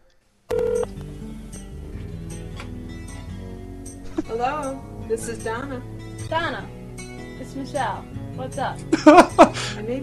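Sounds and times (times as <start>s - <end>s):
telephone dialing tone: 0.5s - 0.9s
speech: 4.3s - 6.8s, 7.4s - 10.0s
laughter: 8.9s - 9.8s.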